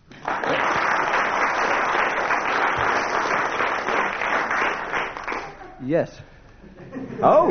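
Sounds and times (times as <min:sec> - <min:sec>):
commissioners clapping: 0:00.0 - 0:05.8
speech: 0:05.9 - 0:06.3, 0:06.9 - 0:07.4.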